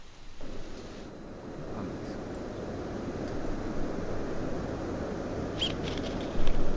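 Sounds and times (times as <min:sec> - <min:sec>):
rumbling outdoor noise: 0:00.2 - 0:06.7
wind roaring: 0:00.4 - 0:06.7
brown-eared bulbul calls: 0:05.6 - 0:06.0.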